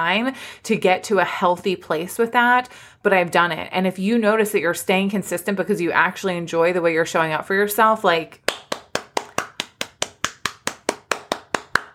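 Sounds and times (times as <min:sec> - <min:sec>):
speech: 0:00.0 - 0:08.6
hands clapping: 0:08.4 - 0:11.9.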